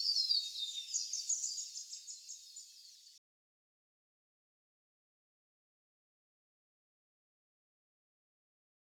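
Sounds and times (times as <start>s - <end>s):
Scarlet honeyeater song: 0.0s - 3.2s.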